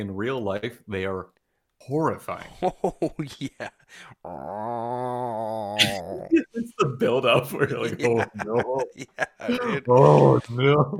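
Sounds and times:
speech: 0.0 - 10.9
cat growling angrily: 4.2 - 6.5
laughter: 5.8 - 10.9.

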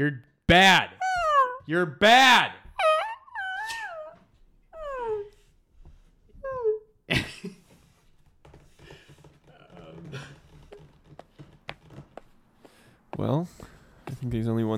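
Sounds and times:
speech: 0.0 - 1.0, 1.7 - 2.6, 13.2 - 14.7
dog whining: 0.9 - 1.7, 2.6 - 5.4, 6.4 - 6.9.

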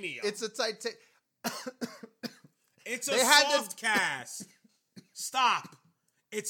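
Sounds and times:
speech: 0.0 - 2.1, 2.9 - 4.5, 5.2 - 6.4
harsh coughs: 1.4 - 2.6, 3.9 - 6.0.

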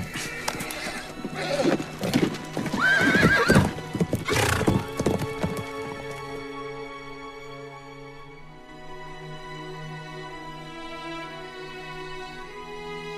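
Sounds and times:
horse neighing loudly: 0.0 - 5.4
horses galloping with hooves clip-clopping: 0.0 - 6.4.

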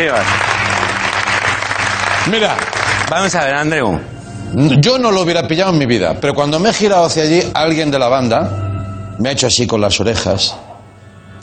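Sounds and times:
speech: 0.0 - 0.5, 2.2 - 8.6, 9.2 - 10.6
audience crowd applauding: 0.0 - 3.7.

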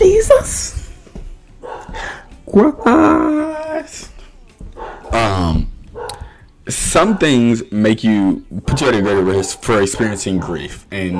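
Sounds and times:
dog barking: 1.6 - 3.3, 4.6 - 7.5, 8.5 - 11.1
speech: 2.6 - 3.3, 6.7 - 11.1.

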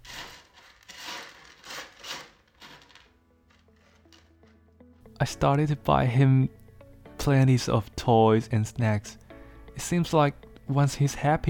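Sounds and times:
cat scratching and digging in its litter box: 0.0 - 3.0
speech: 5.2 - 6.6, 7.2 - 9.2, 9.8 - 11.4.

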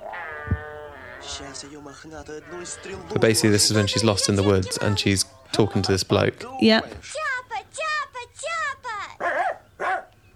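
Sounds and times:
speech: 1.2 - 7.3
dog barking short high yelping barks: 9.2 - 10.1.

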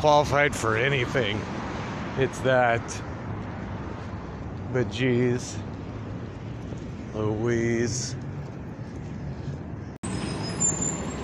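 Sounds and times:
speech: 0.0 - 1.6, 2.2 - 3.1, 4.7 - 5.7, 7.1 - 8.2
large vehicle like a bus rumbling: 0.0 - 11.2
bus brakes squealing as it stops: 7.3 - 11.2.

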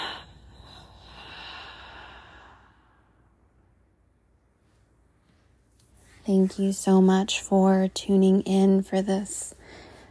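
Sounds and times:
group inhaling and exhaling together in a meditation: 0.0 - 3.2
speech: 6.3 - 9.8.

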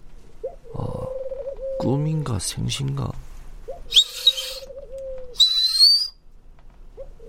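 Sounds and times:
pigeon cooing at a window in the morning: 0.4 - 2.1, 3.7 - 6.2, 6.9 - 7.2
speech: 1.8 - 3.3
rustling fluttery bursts: 3.9 - 6.1.

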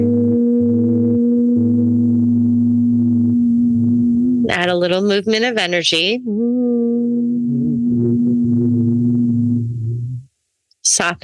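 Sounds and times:
several voices humming together on one steady low tone: 0.0 - 4.6, 6.2 - 10.3
speech: 4.6 - 6.4, 10.9 - 11.2.

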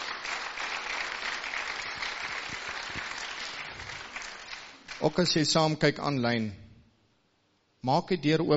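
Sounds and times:
audience applauding: 0.0 - 5.4
speech: 5.0 - 6.6, 7.8 - 8.5.

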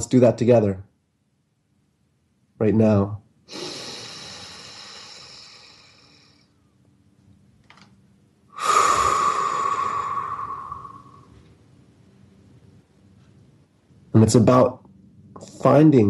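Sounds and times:
speech: 0.0 - 0.9, 2.6 - 3.8, 14.2 - 14.8, 15.6 - 16.0
forceful exhale through the mouth in a breathing exercise: 3.5 - 6.5, 8.5 - 11.4
slow airy inhale through the nose in a breathing exercise: 3.5 - 6.5, 8.5 - 11.4.

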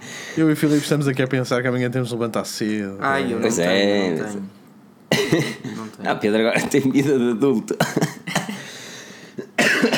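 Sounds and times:
speech: 0.4 - 4.6, 5.3 - 8.1
person coughing: 5.1 - 5.8, 7.8 - 8.7, 9.4 - 9.9.

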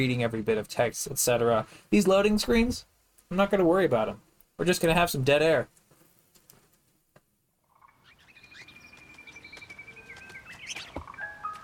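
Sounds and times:
speech: 0.0 - 5.8
small video game birds chirping and whistling: 7.6 - 11.6.

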